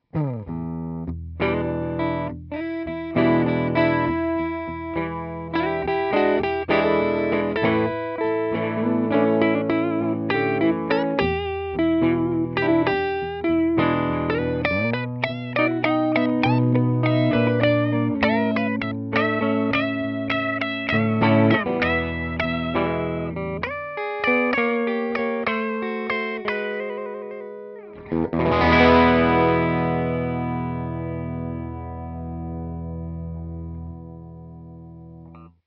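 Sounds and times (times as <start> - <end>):
blues guitar: 0.0 - 35.6.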